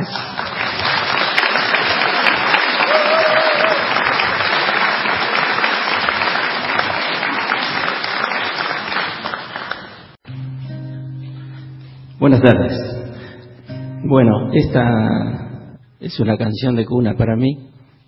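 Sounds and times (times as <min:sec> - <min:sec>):
sustained applause from a sizable audience: 0:00.0 - 0:10.2
speech: 0:12.2 - 0:12.8, 0:14.1 - 0:17.7.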